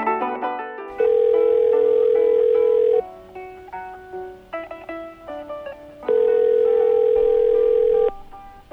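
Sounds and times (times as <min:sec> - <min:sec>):
electronic telephone ringing: 0:01.0 - 0:03.1, 0:06.1 - 0:08.2.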